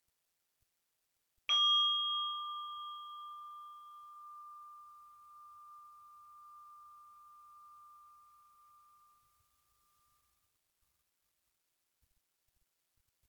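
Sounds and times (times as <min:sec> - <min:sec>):
meditation bell ringing: 0:01.5 - 0:09.3.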